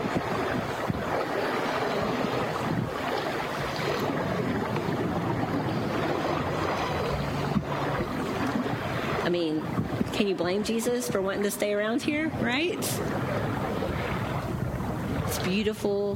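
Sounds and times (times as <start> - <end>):
light wind buffeting the microphone: 0.0 - 16.1
waves lapping on the Sea of Galilee shore: 0.0 - 16.1
speech: 10.2 - 13.5, 15.4 - 16.1.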